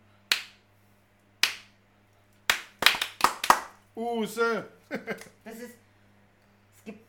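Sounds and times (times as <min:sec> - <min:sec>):
faint steady hum: 0:00.0 - 0:07.0
hands clapping: 0:00.3 - 0:00.6, 0:01.4 - 0:01.7, 0:02.5 - 0:03.8
speech: 0:04.0 - 0:05.8, 0:06.8 - 0:07.0.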